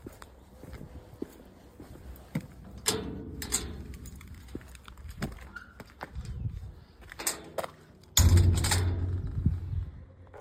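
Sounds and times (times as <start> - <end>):
entrance gate in Celles-sur-Belle: 2.8 - 4.3, 7.2 - 10.0.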